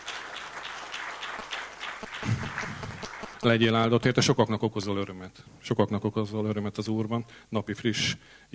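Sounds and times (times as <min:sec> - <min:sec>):
room full of people applauding: 0:00.0 - 0:03.5
speech: 0:03.4 - 0:08.5.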